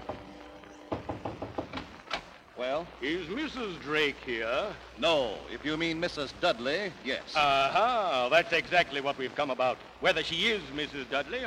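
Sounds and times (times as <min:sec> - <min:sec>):
knocking on a hotel room door: 0:00.0 - 0:01.9
speech: 0:02.6 - 0:11.4.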